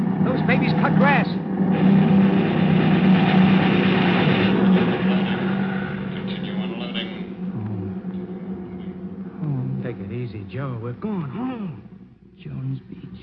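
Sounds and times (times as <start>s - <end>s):
Messerschmitt fighter planes roaring overhead over a sand dune: 0.0s - 10.3s
indistinct voices: 0.0s - 13.2s
speech: 0.4s - 2.3s, 10.6s - 11.9s.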